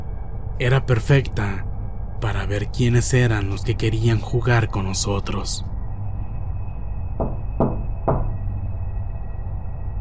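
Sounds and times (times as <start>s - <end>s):
steady hum: 0.0s - 10.0s
speech: 0.6s - 5.7s
sharp knocks on a door: 7.2s - 8.4s.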